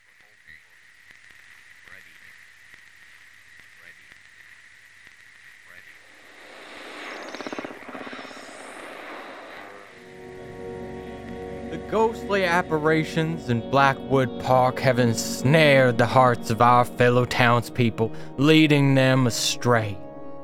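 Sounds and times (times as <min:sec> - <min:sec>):
search party's radio hissing and crackling with static: 0:00.0 - 0:20.4
steady whine: 0:00.0 - 0:20.4
scattered clicks: 0:00.2 - 0:10.1
speech: 0:11.9 - 0:20.0.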